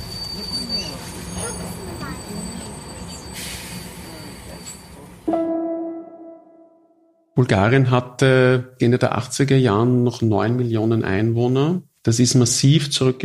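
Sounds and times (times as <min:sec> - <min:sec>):
train rumbling: 0:00.0 - 0:05.3
speech: 0:07.4 - 0:13.2.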